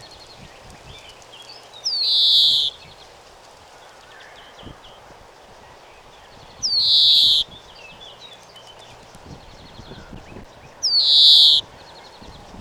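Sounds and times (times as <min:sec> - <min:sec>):
Chloris chloris European greenfinch buzzy wheeze call: 0:01.9 - 0:02.8, 0:06.7 - 0:07.4, 0:10.9 - 0:11.6.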